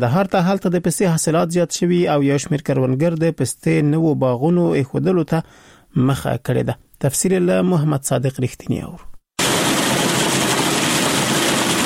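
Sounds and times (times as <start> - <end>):
speech: 0.0 - 9.1
pistachio cleaning machine in Kandahar roaring: 9.4 - 11.8.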